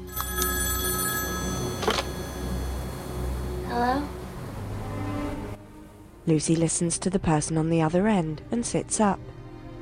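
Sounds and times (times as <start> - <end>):
hotel telephone ringing in short electronic bursts: 0.0 - 3.6
steady low hum: 0.8 - 6.3
speech: 3.8 - 4.2, 6.3 - 9.4.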